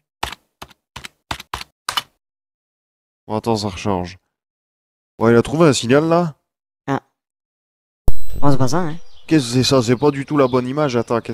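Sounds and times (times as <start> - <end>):
crisp keystrokes on a computer keyboard: 0.2 - 2.2
speech: 3.3 - 4.2, 5.2 - 7.0, 8.5 - 11.3.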